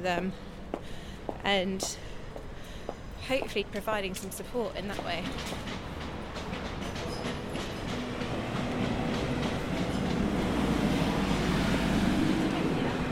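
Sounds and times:
speech: 0.0s - 2.1s, 3.2s - 5.9s
train rumbling along railway tracks in London: 3.4s - 13.1s.

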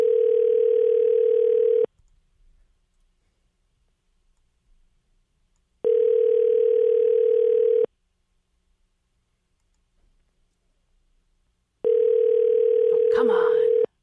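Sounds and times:
outgoing phone call ringing tone: 0.0s - 1.9s, 5.8s - 7.9s, 11.8s - 13.9s
phone line click: 0.0s - 1.9s, 5.9s - 7.9s.

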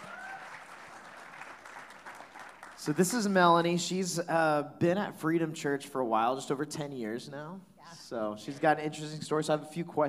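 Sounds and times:
church audience applauding: 0.0s - 3.4s
speech: 2.8s - 10.0s.

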